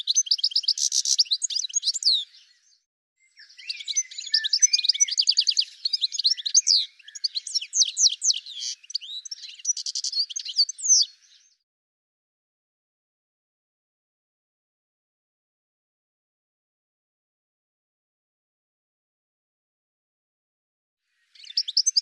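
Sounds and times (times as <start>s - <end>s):
bird calling with rapid high chirps and short trills: 0.0s - 11.6s, 21.3s - 22.0s.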